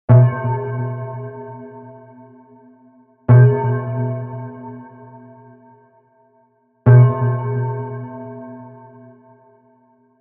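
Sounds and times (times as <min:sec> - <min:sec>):
big bell: 0:00.1 - 0:02.7, 0:03.3 - 0:05.8, 0:06.9 - 0:09.6.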